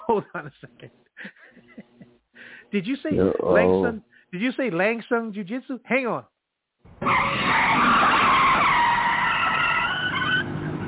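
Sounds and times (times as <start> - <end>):
speech: 0.1 - 1.6, 2.7 - 6.3, 6.9 - 8.1
car tires screeching while skidding under hard braking: 7.0 - 10.8.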